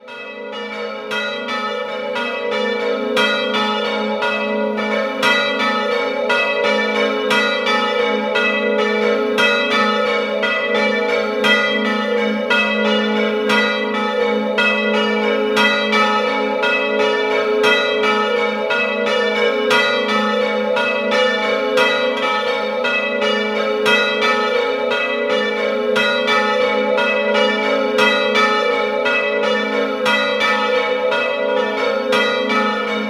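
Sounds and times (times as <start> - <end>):
bells ringing in Villanova: 0.1 - 33.0.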